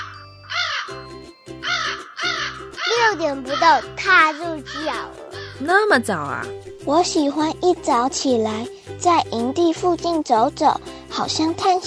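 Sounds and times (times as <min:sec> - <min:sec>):
crow cawing loudly: 0:00.0 - 0:01.0, 0:01.6 - 0:05.7
speech: 0:03.1 - 0:11.8.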